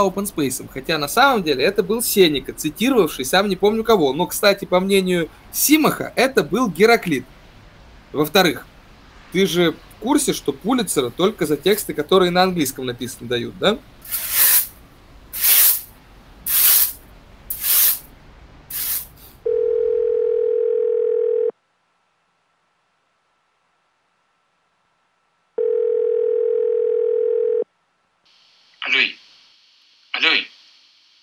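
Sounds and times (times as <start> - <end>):
speech: 0.0 - 7.4, 8.1 - 8.7, 9.3 - 14.4
hissing bursts: 14.0 - 15.9, 16.5 - 18.1, 18.7 - 19.3
short sharp noises: 14.0 - 15.9, 16.5 - 18.1
telephone ringback tone before call answered: 19.4 - 21.5, 25.6 - 27.6.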